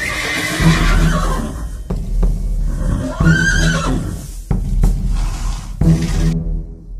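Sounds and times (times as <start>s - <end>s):
horse neighing: 0.0s - 1.8s, 2.6s - 4.3s
horse snorting: 0.0s - 4.4s, 5.1s - 6.4s.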